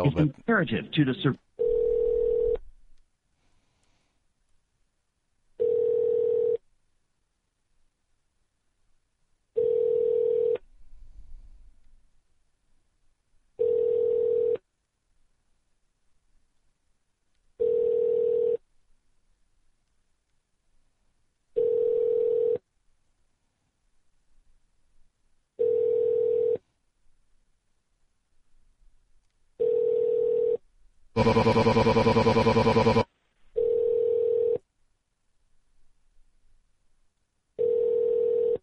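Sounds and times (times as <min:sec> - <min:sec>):
speech: 0:00.0 - 0:01.4, 0:31.2 - 0:33.1
telephone ringback tones ringing through to a casino poker room extension: 0:01.6 - 0:02.6, 0:05.6 - 0:06.6, 0:09.6 - 0:10.6, 0:13.6 - 0:14.6, 0:17.6 - 0:18.6, 0:21.6 - 0:22.6, 0:25.6 - 0:26.6, 0:29.6 - 0:30.6, 0:31.2 - 0:33.0, 0:33.6 - 0:34.6, 0:37.6 - 0:38.6.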